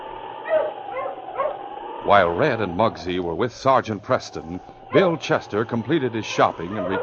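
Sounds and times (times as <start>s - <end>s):
dog near a sled team barking: 0.4s - 1.6s, 6.3s - 7.0s
dog near a sled team whimpering: 0.4s - 1.6s, 4.7s - 7.0s
speech: 2.1s - 7.0s.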